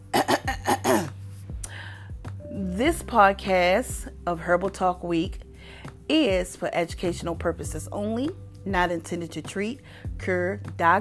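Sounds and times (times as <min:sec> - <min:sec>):
person clearing throat: 0:00.1 - 0:01.2
speech: 0:02.8 - 0:05.4, 0:06.1 - 0:10.9.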